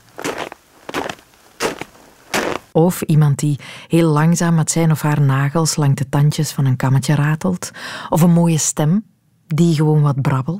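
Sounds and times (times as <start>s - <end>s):
footsteps crunching in snow: 0.0s - 2.8s
speech: 2.8s - 10.5s.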